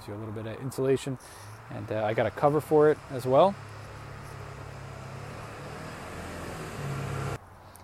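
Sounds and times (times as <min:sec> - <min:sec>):
speech: 0:00.0 - 0:03.7
broadband road noise: 0:00.0 - 0:07.8
heavy truck engine droning as it drives past: 0:01.2 - 0:07.4.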